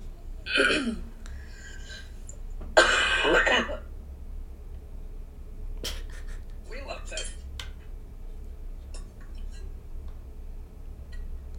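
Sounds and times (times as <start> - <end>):
speech: 0.5 - 1.1
person mimicking a wet phlegmy cough: 2.8 - 3.8.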